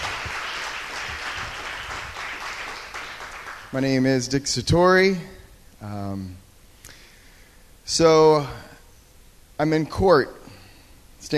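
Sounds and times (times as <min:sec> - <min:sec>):
live audience applause: 0:00.0 - 0:03.8
speech: 0:03.7 - 0:06.4, 0:07.9 - 0:08.7, 0:09.6 - 0:10.4.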